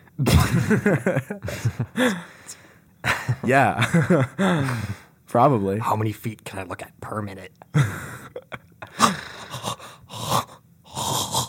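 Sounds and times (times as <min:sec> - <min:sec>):
speech: 0:00.2 - 0:02.6, 0:03.4 - 0:09.2
laughter: 0:00.3 - 0:02.2, 0:03.1 - 0:05.0
heavy excited breathing with raspy wheezing inhales and exhales: 0:01.4 - 0:03.4, 0:04.4 - 0:05.2, 0:07.8 - 0:11.4.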